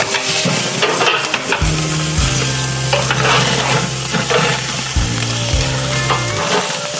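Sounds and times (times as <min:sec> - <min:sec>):
zucchini pieces sizzling on a grill grate: 0:00.0 - 0:06.9
low droning hum: 0:01.6 - 0:06.4.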